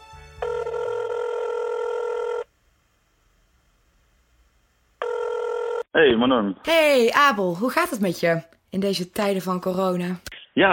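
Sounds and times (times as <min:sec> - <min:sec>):
telephone ringing tone while a call is being placed: 0:00.4 - 0:02.5, 0:05.0 - 0:05.9
speech: 0:06.0 - 0:10.7.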